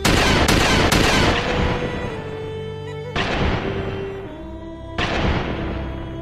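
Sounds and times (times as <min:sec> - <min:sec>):
gunfire at a shooting range: 0:00.0 - 0:02.2, 0:03.2 - 0:04.1, 0:05.0 - 0:06.2.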